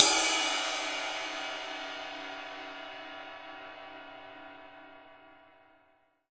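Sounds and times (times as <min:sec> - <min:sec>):
long ride cymbal: 0:00.0 - 0:02.5.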